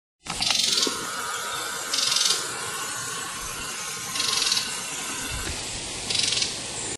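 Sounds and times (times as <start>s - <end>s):
ratchet call of wren, kinglet or gnatcatcher: 0.3s - 6.6s.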